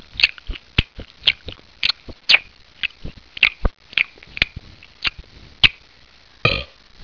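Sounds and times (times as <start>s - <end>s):
chewing: 0.2s - 5.8s
burping: 6.4s - 6.8s.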